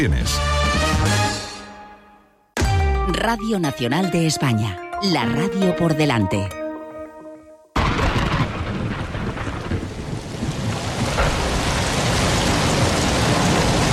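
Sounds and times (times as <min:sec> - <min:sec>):
speech: 0:00.0 - 0:01.2, 0:03.1 - 0:06.6
deep rolling thunder: 0:07.8 - 0:13.9
heavy rain pouring: 0:07.8 - 0:13.9.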